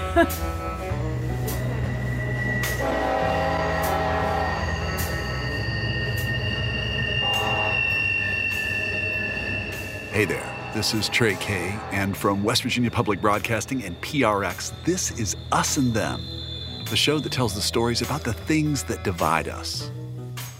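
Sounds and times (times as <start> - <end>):
speech: 0.1 - 0.6, 10.2 - 20.0
train rumbling past in Kermit in southern West Virginia: 0.4 - 20.5
train horn blasts: 0.9 - 15.3
train metallic wheel screeches: 1.3 - 19.9.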